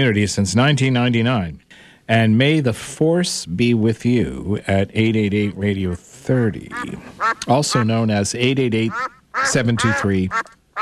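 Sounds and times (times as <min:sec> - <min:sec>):
speech: 0:00.0 - 0:10.8
duck quacking sound effect: 0:06.6 - 0:10.8.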